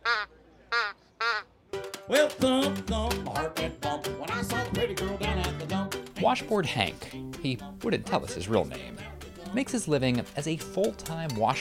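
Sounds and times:
duck call quacking: 0:00.0 - 0:01.5
speech: 0:02.1 - 0:11.5.

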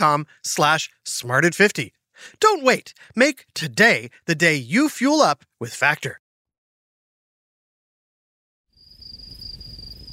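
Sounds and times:
speech: 0:00.0 - 0:06.2
crickets chirping in a high-pitched trill: 0:08.8 - 0:10.1.

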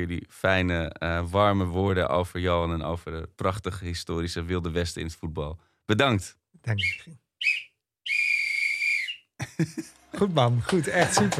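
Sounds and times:
speech: 0:00.0 - 0:07.7, 0:09.6 - 0:11.3
referee-style whistle blowing: 0:06.8 - 0:09.3
laughter: 0:09.4 - 0:11.3.

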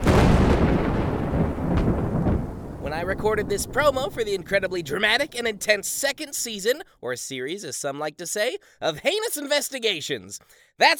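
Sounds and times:
thunder rolling on a dark stormy night: 0:00.0 - 0:06.6
speech: 0:03.1 - 0:10.9.

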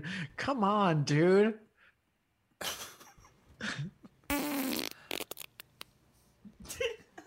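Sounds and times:
speech: 0:00.0 - 0:01.7
wet fart: 0:04.3 - 0:05.6.

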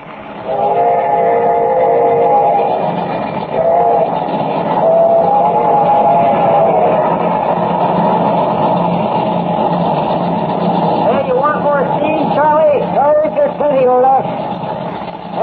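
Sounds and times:
moving steam train rumbling and clattering: 0:00.0 - 0:15.4
steam train whistle blowing: 0:00.4 - 0:07.1.

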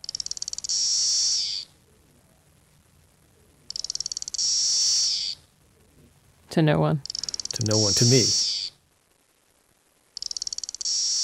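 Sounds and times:
single cicada singing with ticking runs and shrill buzz: 0:00.0 - 0:01.7, 0:03.7 - 0:05.4, 0:07.1 - 0:08.8, 0:10.2 - 0:11.2
speech: 0:06.6 - 0:08.4.

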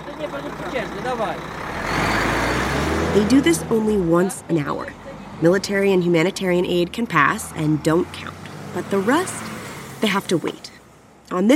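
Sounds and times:
heavy trucks rumbling past through a border blockade: 0:00.0 - 0:11.5
speech: 0:00.2 - 0:02.0, 0:03.0 - 0:09.4, 0:10.0 - 0:10.7, 0:11.3 - 0:11.5.

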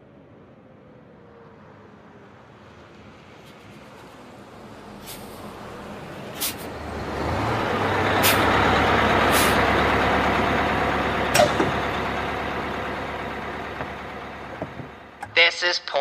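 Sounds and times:
bus engine rumble while pulling in to a stop: 0:00.0 - 0:16.0
bus air brakes hissing: 0:05.0 - 0:05.5, 0:06.3 - 0:06.7, 0:08.2 - 0:08.6, 0:09.2 - 0:09.7
speech: 0:15.6 - 0:16.0.

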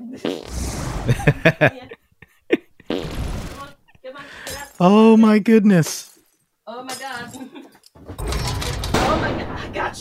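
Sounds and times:
farting: 0:00.2 - 0:01.4, 0:02.8 - 0:03.8
speech: 0:00.2 - 0:01.9, 0:04.8 - 0:06.1
laughter: 0:01.1 - 0:03.0.

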